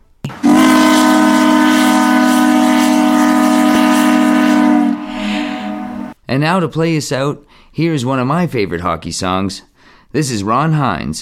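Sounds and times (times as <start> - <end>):
old-fashioned whistle horn blast: 0.4 - 6.2
speech: 6.3 - 11.1.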